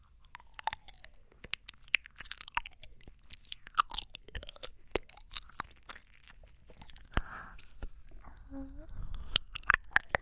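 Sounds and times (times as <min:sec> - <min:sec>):
chewing-like crunches: 0:00.0 - 0:08.2, 0:09.1 - 0:10.2
wet mouth clicks and smacks: 0:00.0 - 0:08.2, 0:09.0 - 0:10.2
breathy noise: 0:06.7 - 0:09.7
soft voiced sound: 0:08.1 - 0:09.2.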